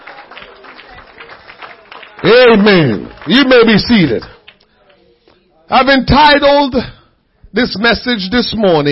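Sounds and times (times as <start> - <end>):
room full of people clapping to praise the Lord: 0.0 - 5.0
murmur of voices: 0.0 - 8.8
speech: 2.2 - 4.3, 5.7 - 8.8.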